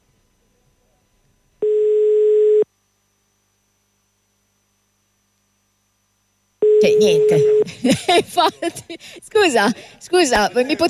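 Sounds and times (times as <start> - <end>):
electronic telephone ring tone: 1.6 - 2.6, 6.6 - 7.7
speech: 6.8 - 10.8
laughter: 7.3 - 10.8.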